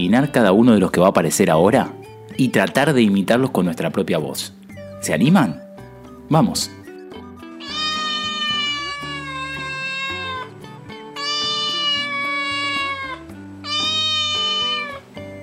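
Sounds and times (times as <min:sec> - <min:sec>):
speech: 0:00.0 - 0:05.6, 0:06.3 - 0:06.8
cat meowing with long wavering cries: 0:07.5 - 0:15.3.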